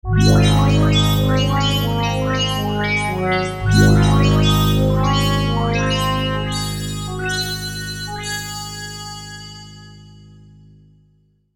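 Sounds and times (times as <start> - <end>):
zap zing synth sound on a V-Synth: 0.1 - 8.3.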